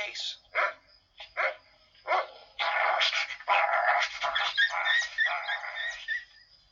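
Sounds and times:
speech: 0.2s - 0.4s
small dog yapping and whining: 1.4s - 6.3s.

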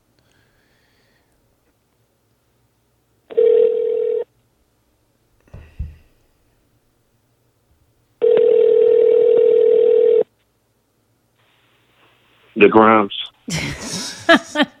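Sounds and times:
phone line ringing tone: 3.3s - 4.3s, 8.2s - 10.3s
speech: 12.6s - 13.7s
laughter: 13.5s - 14.7s.

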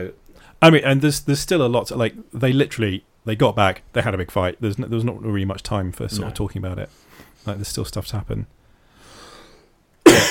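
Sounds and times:
speech: 0.0s - 8.6s
faint breath: 0.3s - 0.6s, 6.9s - 7.5s, 8.6s - 9.8s
person coughing: 10.0s - 10.2s.

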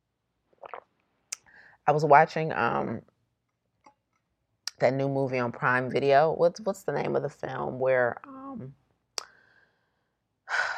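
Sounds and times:
person sipping a drink: 0.6s - 1.4s
speech: 1.9s - 3.1s, 4.8s - 8.8s.

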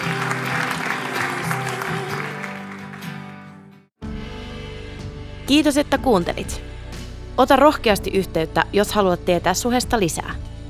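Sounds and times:
crowd applause: 0.0s - 3.5s
speech: 5.5s - 6.7s, 7.4s - 10.5s.

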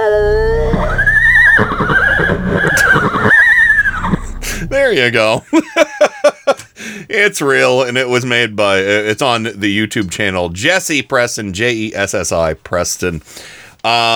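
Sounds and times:
horses neighing and whinnying: 0.1s - 5.1s
low rumble: 0.1s - 5.2s
speech: 5.1s - 6.0s, 7.2s - 14.1s.

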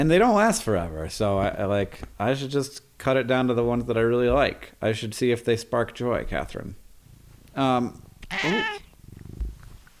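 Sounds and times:
speech: 0.0s - 6.8s, 7.6s - 8.9s
cat meowing: 8.2s - 8.9s.

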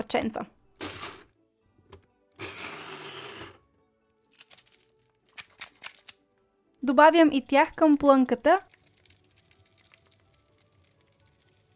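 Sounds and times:
speech: 0.0s - 0.6s, 6.8s - 8.7s
blender pulsing to chop walnuts: 2.4s - 3.6s.

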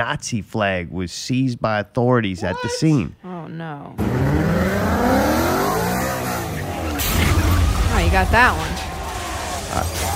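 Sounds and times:
speech: 0.0s - 5.3s, 8.1s - 8.9s
car engine revving and whining: 4.0s - 10.1s
sharp squealing car tires skidding: 4.0s - 10.1s
sudden loud car crash: 5.7s - 10.1s.

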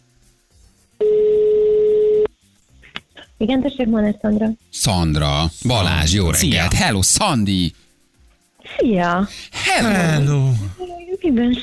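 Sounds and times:
ringback tone on an outgoing phone call: 1.0s - 2.3s
speech: 3.4s - 7.8s, 8.6s - 11.6s.

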